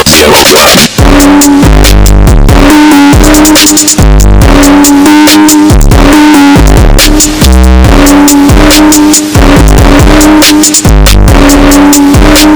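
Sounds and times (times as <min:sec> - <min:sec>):
loud phonk music: 0:00.0 - 0:12.5.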